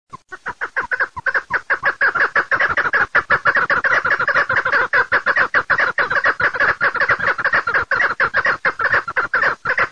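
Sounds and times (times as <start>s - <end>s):
birdsong: 0.1s - 9.9s.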